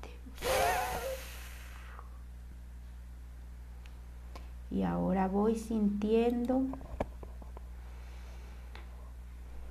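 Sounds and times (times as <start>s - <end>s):
strong exhalation during breathing exercise: 0.3s - 2.0s
speech: 4.7s - 6.9s.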